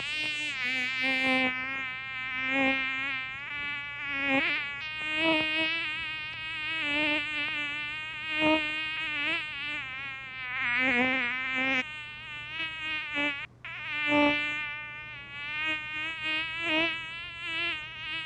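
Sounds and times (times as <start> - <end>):
mosquito whine: 0.0 - 18.2.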